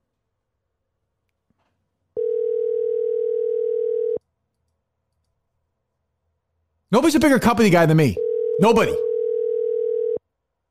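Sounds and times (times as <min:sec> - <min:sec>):
telephone ringing tone on an outgoing call: 0:02.2 - 0:04.2, 0:08.2 - 0:10.2
speech: 0:06.9 - 0:09.1.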